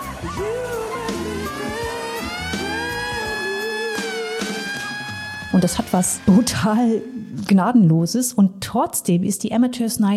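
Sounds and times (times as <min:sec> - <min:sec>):
crowd booing and jeering: 0:00.0 - 0:07.2
wailing siren: 0:00.1 - 0:07.4
speech: 0:00.2 - 0:01.3, 0:05.6 - 0:10.1.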